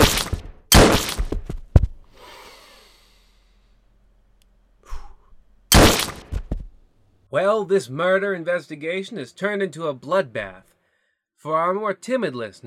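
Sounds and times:
gunshots fired by a group of men: 0:00.0 - 0:01.4, 0:05.7 - 0:06.5
speech: 0:07.3 - 0:10.7, 0:11.4 - 0:12.6.

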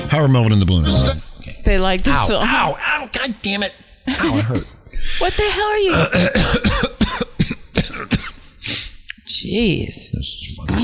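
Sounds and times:
speech: 0:00.2 - 0:06.8, 0:09.4 - 0:10.8
person clearing throat: 0:05.9 - 0:08.4.

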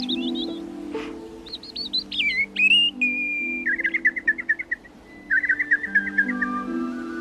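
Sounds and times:
person imitating birdsong with whistled chirps and trills: 0:00.0 - 0:07.2.

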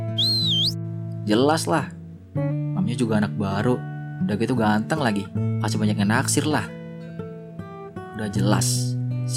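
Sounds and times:
person giving a short bright whistle: 0:00.2 - 0:00.8
speech: 0:01.3 - 0:02.0, 0:02.8 - 0:06.8, 0:08.2 - 0:09.3.

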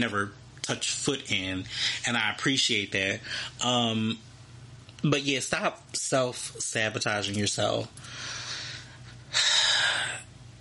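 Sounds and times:
speech: 0:00.0 - 0:04.3, 0:05.0 - 0:08.4
deep audible breath: 0:08.0 - 0:10.3.

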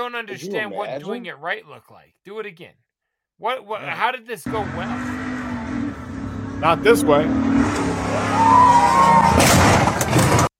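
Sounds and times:
speech: 0:00.0 - 0:02.8, 0:03.4 - 0:05.2, 0:06.6 - 0:10.2
truck engine roaring with a rising whine as it jumps a ramp: 0:04.5 - 0:10.5
crash of metal and debris as a truck lands and its airbags go off: 0:08.9 - 0:10.5.

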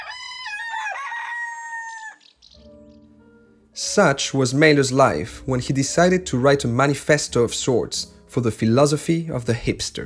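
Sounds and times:
rooster crowing on a farm: 0:00.0 - 0:02.3
speech: 0:03.8 - 0:10.0.

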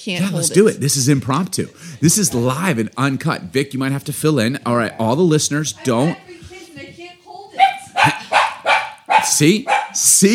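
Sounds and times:
speech: 0:00.0 - 0:06.5, 0:09.4 - 0:10.3
dog barking: 0:07.6 - 0:10.1.

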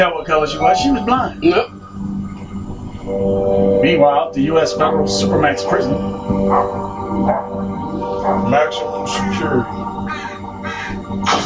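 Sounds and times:
speech: 0:00.0 - 0:02.1, 0:03.1 - 0:09.9
bird giving harsh raspy calls: 0:09.2 - 0:11.2.

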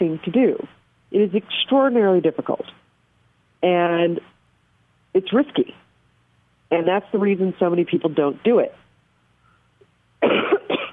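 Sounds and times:
speech: 0:00.0 - 0:02.8, 0:03.6 - 0:04.3, 0:05.1 - 0:05.8, 0:06.7 - 0:08.8, 0:10.2 - 0:10.6
harsh coughs: 0:10.2 - 0:10.9.

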